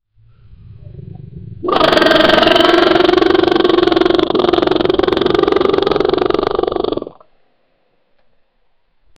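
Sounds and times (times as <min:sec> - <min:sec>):
Tyrannosaurus rex roaring: 0:00.8 - 0:07.2.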